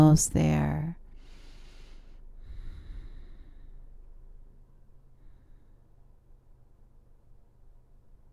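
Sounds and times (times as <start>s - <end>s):
deep breathing during a yoga session: 1.1s - 6.4s.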